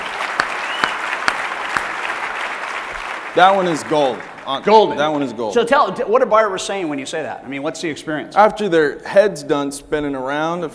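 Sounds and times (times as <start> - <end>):
audience applause: 0.0 - 5.4
speech: 3.4 - 10.7.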